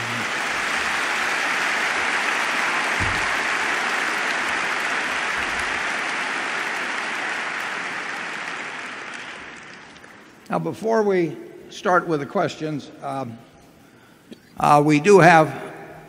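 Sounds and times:
large audience applauding: 0.0 - 10.3
speech: 10.5 - 13.5, 14.6 - 15.7.

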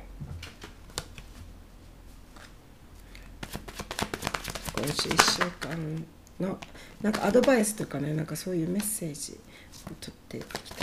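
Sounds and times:
tarot cards being shuffled: 0.4 - 1.4, 2.3 - 7.8, 9.7 - 10.8
speech: 4.8 - 10.8.

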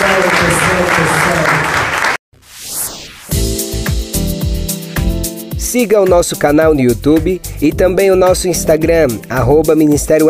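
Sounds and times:
crowd applause: 0.0 - 2.2
rising whoosh: 2.4 - 4.3
loud rhythmic music with a steady bass beat: 3.3 - 10.2
speech: 5.8 - 10.2.

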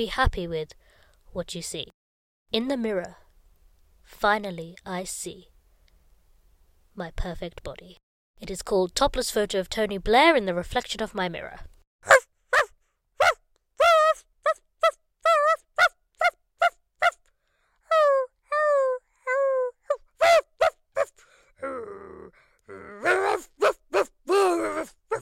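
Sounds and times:
speech: 0.0 - 3.2, 4.1 - 5.5, 7.0 - 12.2
voice imitating a dog barking, yelping and howling: 12.0 - 17.2, 17.8 - 25.2.

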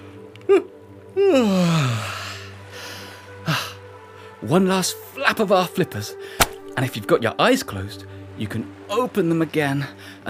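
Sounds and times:
speech: 0.5 - 2.1, 4.4 - 10.2
person yawning: 0.5 - 2.4.

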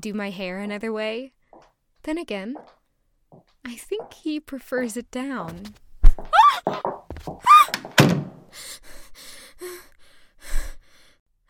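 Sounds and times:
speech: 0.0 - 1.4, 2.0 - 2.8, 3.6 - 5.8, 6.6 - 9.8
door slamming shut: 7.6 - 8.4.

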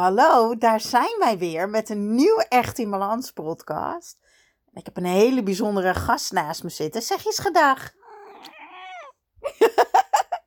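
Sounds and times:
speech: 0.0 - 4.2, 4.8 - 8.6
cat meowing: 8.0 - 9.2
laughter: 9.4 - 10.4.

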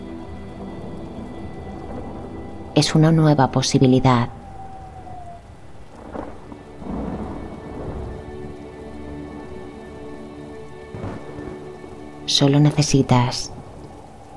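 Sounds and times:
deep rumbles of thunder: 0.0 - 14.3
steady rain during a thunderstorm: 0.0 - 14.3
loud thunder crack: 0.6 - 8.7, 10.9 - 14.3
speech: 2.8 - 4.4, 12.4 - 13.5.

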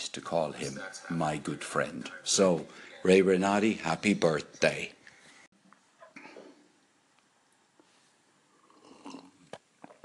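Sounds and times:
speech: 0.2 - 5.0
faint wet mouth noises: 8.6 - 10.0
swallowing a sip of tea: 8.6 - 10.0.

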